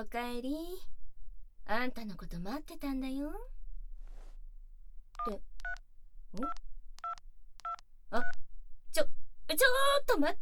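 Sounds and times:
speech: 0:00.0 - 0:01.0, 0:01.7 - 0:03.6, 0:05.2 - 0:06.7, 0:08.1 - 0:08.4, 0:09.0 - 0:10.4
telephone keypad tones: 0:06.4 - 0:08.4.

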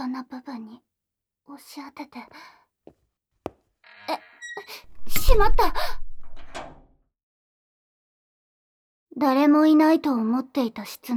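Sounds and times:
speech: 0:01.6 - 0:02.6, 0:05.3 - 0:06.0, 0:09.2 - 0:11.1
room door swinging shut with a solid thud: 0:04.9 - 0:06.9.

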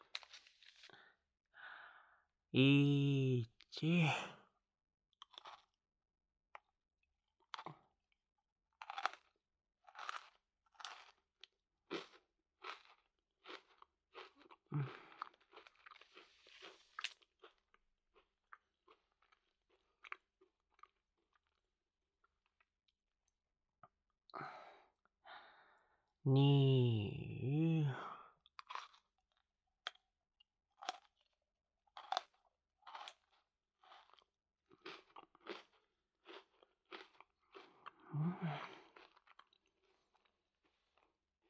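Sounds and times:
crunching and chewing a chocolate snack: 0:00.0 - 0:00.9, 0:05.2 - 0:05.8, 0:07.4 - 0:07.8, 0:08.8 - 0:22.7, 0:28.5 - 0:30.1, 0:30.7 - 0:41.4
speech: 0:02.5 - 0:04.3
person humming or sighing: 0:02.6 - 0:04.3, 0:26.3 - 0:28.2, 0:38.1 - 0:38.7.

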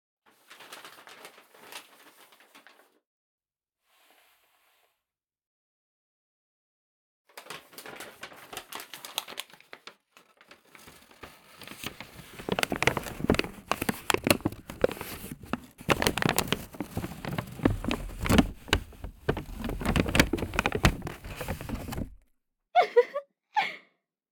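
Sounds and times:
paper bag rustling as it's pulled over head: 0:00.5 - 0:02.8, 0:10.4 - 0:22.2.

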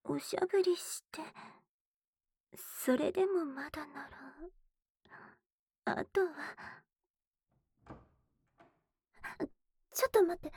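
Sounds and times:
speech: 0:00.2 - 0:01.6, 0:02.5 - 0:06.9, 0:09.2 - 0:10.5
front door opening with clunks, rattles and latch clack: 0:07.8 - 0:08.8.

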